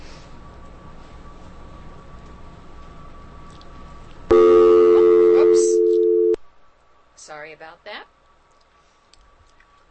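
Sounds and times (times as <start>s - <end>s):
low noise: 0.0s - 9.8s
electronic phone-line tone after a dropped call: 4.3s - 6.4s.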